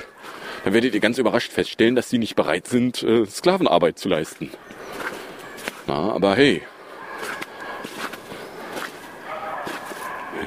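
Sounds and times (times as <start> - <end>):
dogs barking: 0.0 - 1.4, 4.5 - 10.4
speech: 0.6 - 5.0, 5.9 - 6.7.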